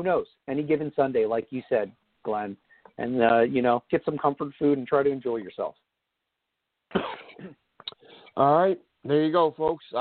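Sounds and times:
speech: 0.0 - 5.8, 6.9 - 7.6, 8.4 - 9.9
person coughing: 6.9 - 7.7.

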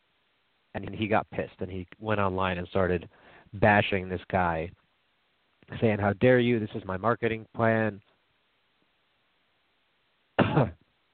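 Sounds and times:
speech: 0.7 - 4.8, 5.7 - 8.1, 10.6 - 10.8
person coughing after a drink went down the wrong pipe: 10.4 - 10.8.

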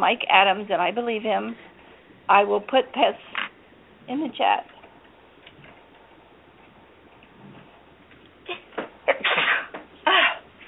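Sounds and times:
speech: 0.0 - 1.7, 2.3 - 3.4, 4.0 - 4.7
stifled sneeze attempt: 8.5 - 10.6.

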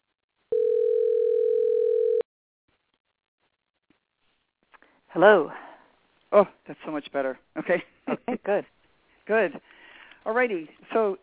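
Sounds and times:
telephone dial tone while dialing out: 0.5 - 2.2
speech: 5.2 - 5.6, 6.3 - 11.2.

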